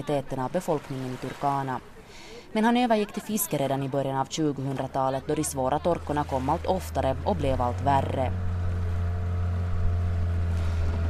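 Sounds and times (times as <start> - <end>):
speech: 0.0 - 8.5
long boat engine puttering heading out from the shore on Lake Turkana: 4.6 - 11.0.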